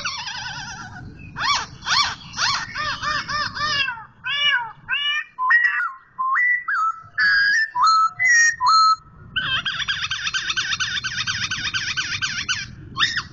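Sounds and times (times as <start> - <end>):
low background hum: 0.0 - 13.3
Black-throated laughingthrush whistled song: 5.2 - 9.0.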